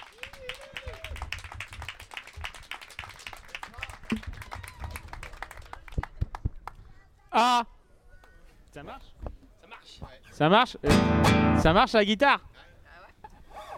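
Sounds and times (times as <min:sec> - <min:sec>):
audience applauding to welcome a performer on a radio program: 0:00.0 - 0:06.2
speech: 0:04.1 - 0:04.3, 0:07.4 - 0:07.7, 0:08.8 - 0:09.2, 0:10.0 - 0:12.5.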